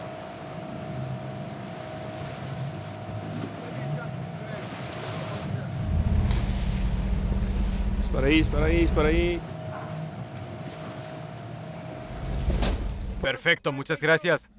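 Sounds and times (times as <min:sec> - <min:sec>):
auxiliary boat motor drone while moving goods between two ships: 0:00.0 - 0:13.3
water noise: 0:00.0 - 0:13.3
wind: 0:00.0 - 0:14.5
deeper engine rumble: 0:05.5 - 0:11.0, 0:11.6 - 0:13.3
speech: 0:08.2 - 0:09.5, 0:13.2 - 0:14.5.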